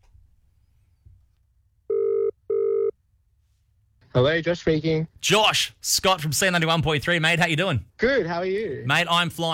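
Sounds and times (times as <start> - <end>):
telephone ringback tone on an outgoing call: 1.9 - 2.9
speech: 4.2 - 9.5.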